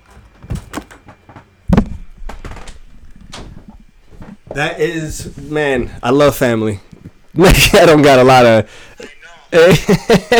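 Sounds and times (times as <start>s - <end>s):
rattling knocks: 0.0s - 6.0s
shuffling: 0.0s - 10.3s
door shutting with a solid thud: 0.1s - 3.8s
speech: 4.6s - 8.9s, 9.5s - 10.3s
laughter: 9.1s - 10.3s.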